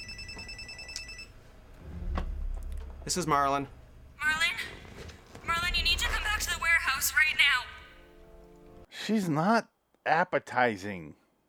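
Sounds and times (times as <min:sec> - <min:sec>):
cell phone ringing with a bright electronic tone: 0:00.0 - 0:01.4
low rumbling noise: 0:01.4 - 0:07.5
speech: 0:03.1 - 0:03.8, 0:09.1 - 0:11.2.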